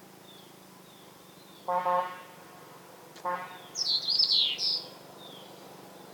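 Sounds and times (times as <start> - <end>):
Burmese yuhina giving a twittering chirp: 3.6 - 5.5.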